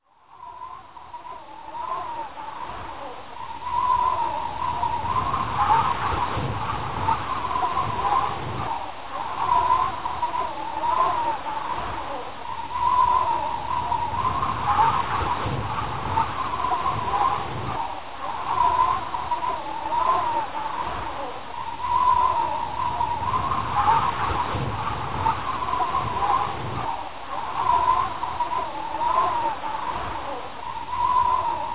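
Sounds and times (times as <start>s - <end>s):
wind: 0.0s - 31.7s.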